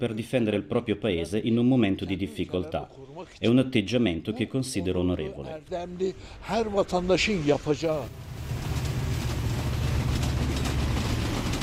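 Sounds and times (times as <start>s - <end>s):
speech: 0.0s - 8.3s
low rumbling machinery at the railway station in Van: 8.0s - 11.6s.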